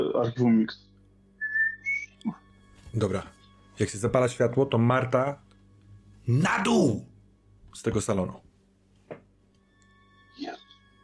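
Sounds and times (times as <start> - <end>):
faint steady hum: 0.0 - 11.0
speech: 0.2 - 0.9, 2.2 - 5.4, 6.3 - 7.1, 7.7 - 8.4
person whistling a tune: 1.4 - 2.2.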